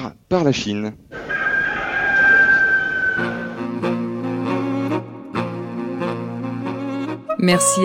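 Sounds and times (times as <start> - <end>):
speech: 0.0 - 1.3, 3.2 - 4.0, 7.4 - 7.8
hotel's rooster crowing: 1.2 - 3.6
sustained harmonic tones: 1.3 - 6.0.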